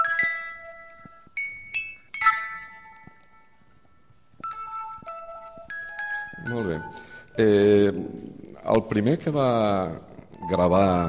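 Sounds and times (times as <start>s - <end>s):
hand-cranked music box playing a tune: 0.0s - 8.1s, 10.3s - 11.0s
speech: 6.5s - 11.0s.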